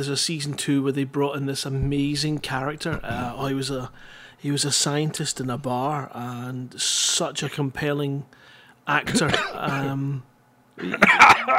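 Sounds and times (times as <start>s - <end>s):
speech: 0.0s - 11.5s
person coughing: 9.1s - 10.0s, 10.8s - 11.5s.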